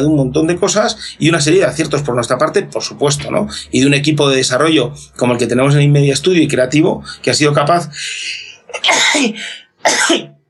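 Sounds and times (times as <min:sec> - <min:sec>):
speech: 0:00.0 - 0:10.4
person sneezing: 0:08.7 - 0:10.4.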